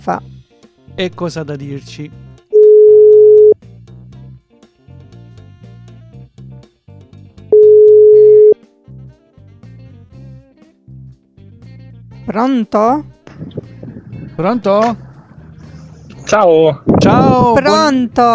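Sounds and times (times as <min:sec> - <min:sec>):
speech: 0:00.0 - 0:00.3, 0:01.0 - 0:02.2, 0:12.4 - 0:13.1, 0:14.4 - 0:15.0, 0:16.3 - 0:18.3
telephone dial tone while placing a call: 0:02.6 - 0:03.6, 0:07.5 - 0:08.6.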